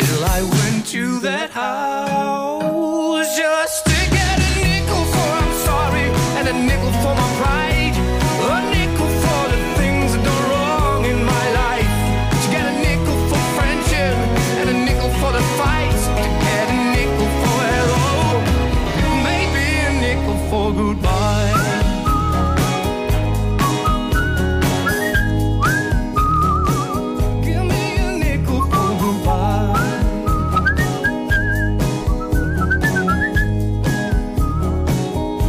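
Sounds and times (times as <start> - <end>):
full loud song with steady beat and backing instruments: 0.0 - 35.4
person whistling a melody along to a song: 21.2 - 35.1.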